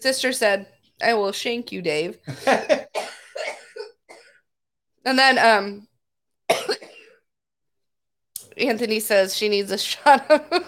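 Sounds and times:
speech: 0:00.0 - 0:02.8, 0:05.0 - 0:05.9, 0:08.6 - 0:10.6
woman coughing harshly into a breathy wheeze: 0:02.4 - 0:04.4, 0:06.5 - 0:07.2.

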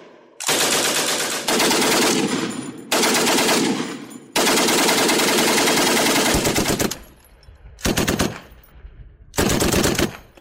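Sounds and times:
World War I machine gun fire: 0:00.4 - 0:06.9, 0:09.4 - 0:10.2.

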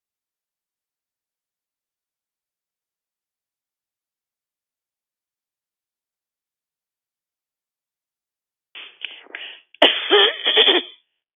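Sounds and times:
harsh coughing through a phone line: 0:08.8 - 0:11.0.

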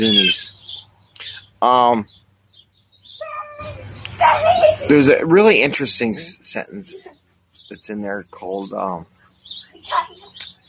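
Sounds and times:
speech: 0:00.0 - 0:00.5, 0:01.6 - 0:02.2, 0:04.2 - 0:10.5
dog yelping bark: 0:03.2 - 0:04.9, 0:09.8 - 0:10.4.

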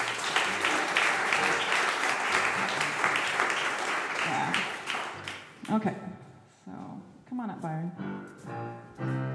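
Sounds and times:
crowd applauding: 0:00.0 - 0:05.7
speech: 0:05.7 - 0:06.2, 0:07.3 - 0:09.2.

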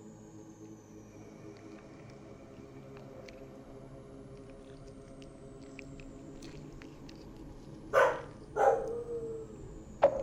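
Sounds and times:
dog barking: 0:07.9 - 0:10.2.

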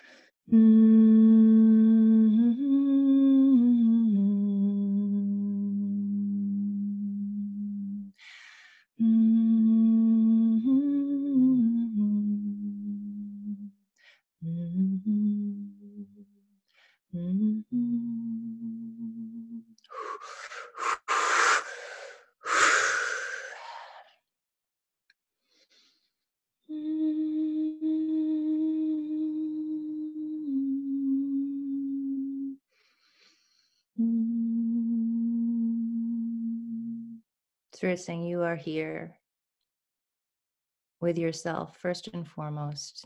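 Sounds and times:
audible breaths between humming phrases: 0:00.0 - 0:00.3, 0:08.2 - 0:08.9, 0:14.0 - 0:14.2, 0:16.7 - 0:17.0, 0:19.9 - 0:24.1, 0:25.4 - 0:26.2, 0:32.7 - 0:33.9
speech: 0:00.5 - 0:00.9, 0:37.9 - 0:39.2, 0:41.0 - 0:43.0
person humming long steady low tones: 0:00.5 - 0:08.2, 0:09.0 - 0:13.7, 0:14.4 - 0:16.3, 0:17.1 - 0:21.1, 0:26.7 - 0:32.6, 0:34.0 - 0:37.2.

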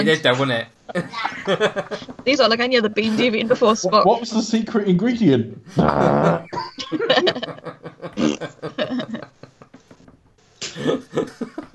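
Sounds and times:
speech: 0:00.0 - 0:09.4, 0:10.8 - 0:11.7
people laughing: 0:00.0 - 0:10.0, 0:10.6 - 0:11.7
person blowing a raspberry imitating a fart: 0:05.8 - 0:06.7, 0:08.2 - 0:08.4.

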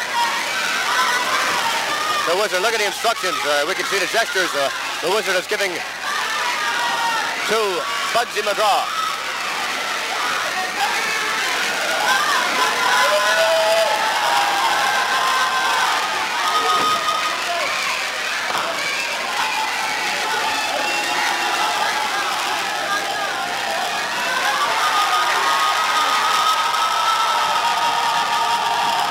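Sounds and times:
large indoor capacity crowd roaring and cheering at wrestling match: 0:00.0 - 0:29.0
speech: 0:02.3 - 0:06.0, 0:07.5 - 0:09.0
crowd whistles: 0:16.5 - 0:17.8, 0:20.5 - 0:21.3.

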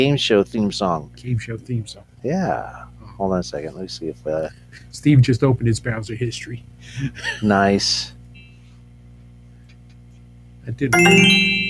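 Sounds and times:
speech: 0:00.0 - 0:08.2, 0:10.6 - 0:11.6
doorbell chime: 0:11.0 - 0:11.6.

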